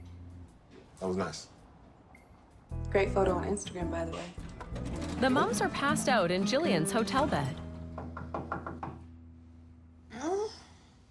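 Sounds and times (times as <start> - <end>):
speech: 1.0 - 1.6, 2.9 - 7.6
firm knocks on a hotel room door: 7.9 - 9.1.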